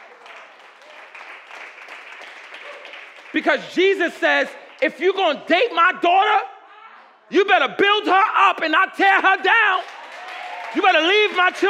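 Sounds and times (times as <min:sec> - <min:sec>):
audience clapping: 0:00.0 - 0:05.1, 0:09.6 - 0:11.6
speech: 0:03.3 - 0:06.5, 0:07.3 - 0:09.9, 0:10.7 - 0:11.6.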